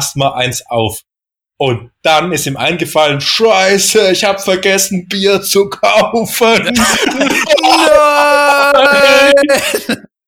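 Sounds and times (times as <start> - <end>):
speech: 0.0 - 10.1
laughter: 5.9 - 10.1
person letting out mock scream of despair: 6.9 - 10.0.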